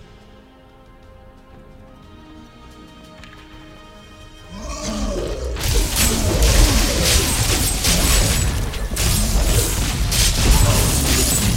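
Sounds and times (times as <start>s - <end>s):
exploding fountain in a video game, booming and crashing: 4.6s - 11.5s.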